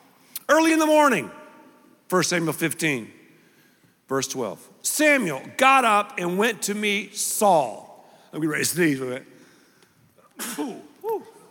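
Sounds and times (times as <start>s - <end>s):
speech: 0.5s - 1.4s, 2.1s - 3.2s, 4.1s - 9.4s, 10.4s - 10.8s
sneeze: 10.4s - 11.4s.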